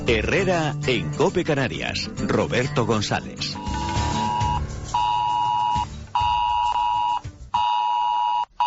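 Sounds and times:
speech: 0:00.1 - 0:03.5
electronic emergency alert tone: 0:03.5 - 0:08.6.

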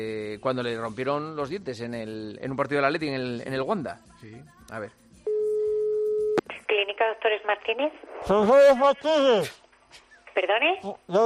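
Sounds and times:
speech: 0:00.0 - 0:05.0, 0:06.6 - 0:11.2
telephone line tone on a call to a dental clinic: 0:05.3 - 0:06.4.

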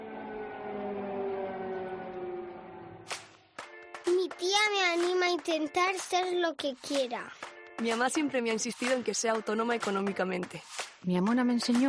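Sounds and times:
air raid sirens wailing: 0:00.0 - 0:03.5
speech: 0:04.4 - 0:11.8.

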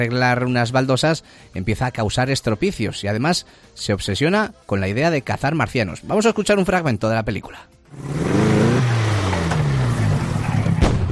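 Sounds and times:
speech: 0:00.0 - 0:08.6
car engine with a Spanish-made motor running: 0:07.9 - 0:11.0.

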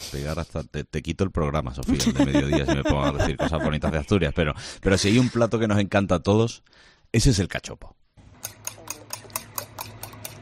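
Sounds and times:
speech: 0:00.1 - 0:08.0
laughter: 0:01.8 - 0:05.6
whisking eggs in a bowl for cachopo: 0:08.4 - 0:10.3.

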